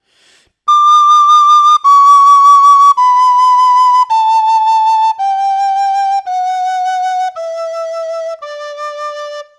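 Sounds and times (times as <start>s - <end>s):
Galician whistle blowing vibrato during tuning: 0.7s - 6.2s.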